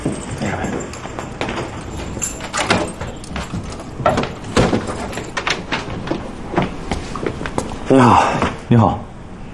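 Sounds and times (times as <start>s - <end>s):
keys jangling and clinking in a lock: 0.0s - 6.5s
door being unlocked and pulled open: 0.0s - 6.7s
speech: 7.9s - 9.0s.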